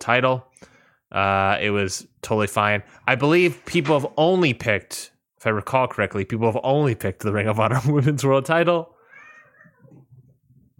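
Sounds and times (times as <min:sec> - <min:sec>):
speech: 0:00.0 - 0:00.5, 0:01.1 - 0:08.9
cat meowing: 0:09.0 - 0:10.0.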